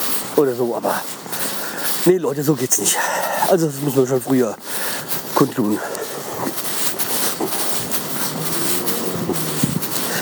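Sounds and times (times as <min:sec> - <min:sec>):
speech: 0:00.4 - 0:01.2, 0:02.0 - 0:04.8, 0:05.4 - 0:05.9
train rumbling past in a town outdoors: 0:07.9 - 0:10.1.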